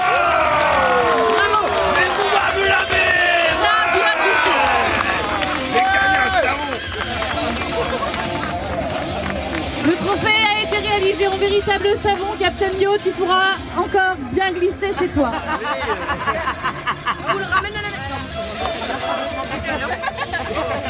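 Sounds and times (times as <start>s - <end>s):
many overlapping shouting voices: 0.0s - 7.6s
crowd cheering and whooping for winner: 0.0s - 9.0s
crowd applauding for winner: 0.0s - 11.1s
laughter: 1.4s - 9.2s, 14.8s - 20.8s
speech: 11.6s - 16.6s.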